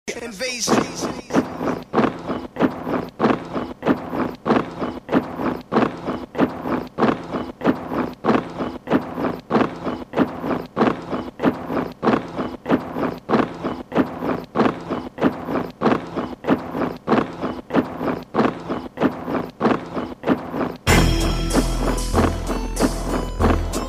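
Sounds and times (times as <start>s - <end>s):
speech: 0.2s - 1.7s
heavy rhythmic stomping of many feet: 0.7s - 23.8s.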